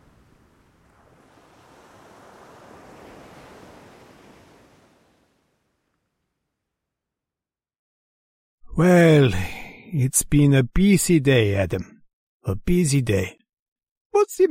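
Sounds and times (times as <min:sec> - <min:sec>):
sea waves rumbling and hissing below a cliff edge: 0:00.0 - 0:06.2
speech: 0:08.8 - 0:13.4, 0:14.2 - 0:14.4.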